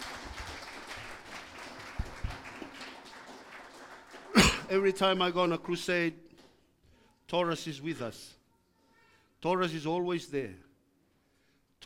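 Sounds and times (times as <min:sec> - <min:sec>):
audience clapping in a steady dense patter: 0:00.0 - 0:05.8
speech: 0:04.7 - 0:06.2, 0:07.3 - 0:08.4, 0:09.4 - 0:10.7.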